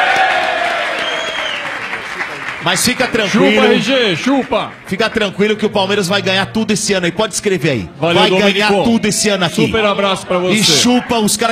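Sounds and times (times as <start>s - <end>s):
crowd applauding: 0.0s - 5.8s
speech: 2.6s - 11.4s.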